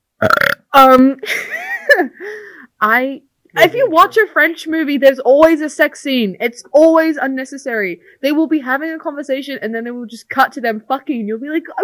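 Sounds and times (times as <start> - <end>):
loud burp: 0.2 - 0.8
speech: 0.2 - 11.8.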